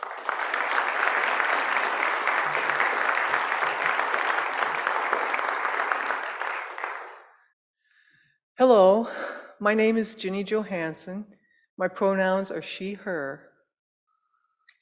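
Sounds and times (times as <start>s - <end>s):
audience applause: 0.0s - 7.4s
speech: 8.6s - 13.5s.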